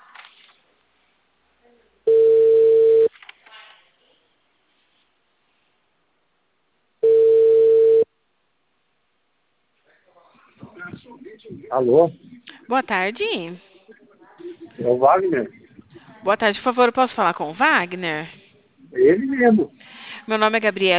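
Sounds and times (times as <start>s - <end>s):
ringback tone of an outgoing telephone call: 2.1s - 3.1s, 7.0s - 8.1s
speech: 11.7s - 13.7s, 14.8s - 15.6s, 16.2s - 20.9s.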